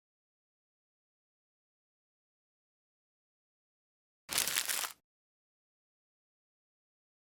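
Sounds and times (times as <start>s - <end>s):
crumpled paper emptied from trash: 4.3s - 5.0s.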